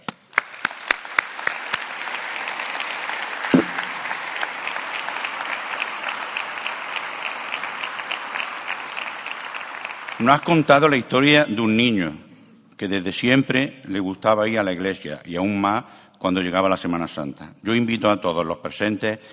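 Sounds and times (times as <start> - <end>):
sharp distinct claps: 0.0 - 11.0
crowd applause: 0.3 - 11.2
speech: 10.2 - 12.2, 12.8 - 19.3.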